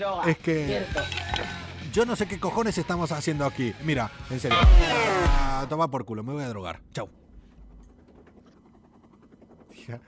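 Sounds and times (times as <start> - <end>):
speech: 0.0 - 7.2, 9.8 - 10.0
helicopter passing overhead with rotor thudding: 7.2 - 10.0.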